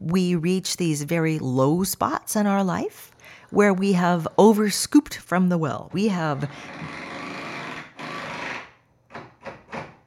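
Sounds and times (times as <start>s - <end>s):
speech: 0.1s - 7.0s
power drill whirring: 6.5s - 8.8s.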